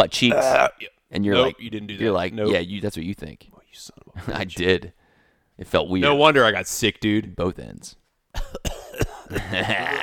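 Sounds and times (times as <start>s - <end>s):
speech: 0.0s - 5.0s, 5.6s - 10.0s
harsh rasping cough dragging into a gagging wheeze: 8.3s - 10.0s.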